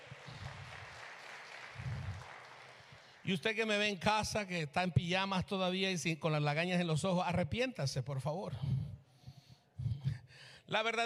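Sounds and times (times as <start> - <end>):
church congregation applauding: 0.0 - 4.0
speech: 3.2 - 8.8, 10.7 - 11.0.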